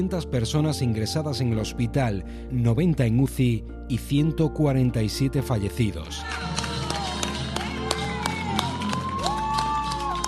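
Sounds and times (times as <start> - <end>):
speech: 0.0 - 6.5
many people clapping on balconies: 6.1 - 10.2
people cheering on balconies: 6.1 - 10.2.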